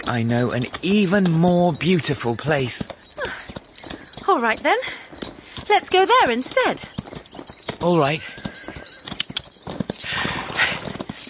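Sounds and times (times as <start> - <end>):
horse hooves at a light gallop: 0.0 - 11.2
speech: 0.1 - 3.0, 4.4 - 5.0, 5.7 - 7.0, 7.8 - 8.4
breathy whinny-like sound from the horse: 10.0 - 11.2.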